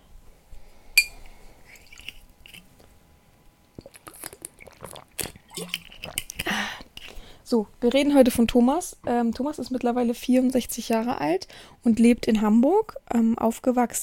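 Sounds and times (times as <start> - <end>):
glass clink: 1.0 - 1.2
moist crackly mouth noises of a person sipping a drink: 3.8 - 7.1
speech: 7.5 - 14.0.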